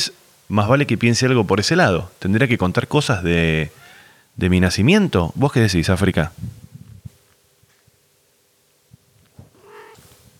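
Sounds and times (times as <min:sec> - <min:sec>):
speech: 0:00.0 - 0:03.8, 0:04.4 - 0:06.6
cat meowing: 0:09.4 - 0:10.1.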